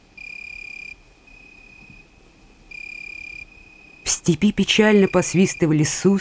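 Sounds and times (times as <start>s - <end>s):
grasshoppers chirping at night in a high glassy trill: 0.0s - 6.1s
speech: 4.2s - 6.1s.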